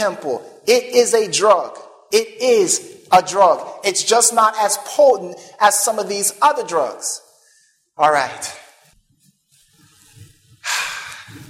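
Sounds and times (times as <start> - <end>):
speech: 0.0 - 7.2, 8.0 - 8.6
person inhaling sharply: 10.6 - 11.4.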